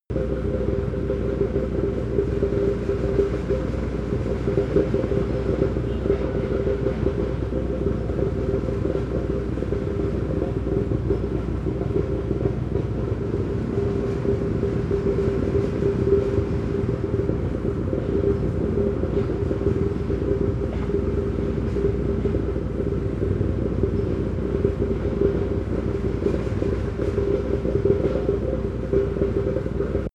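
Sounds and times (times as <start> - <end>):
construction site machine rattling: 0.1 - 30.1.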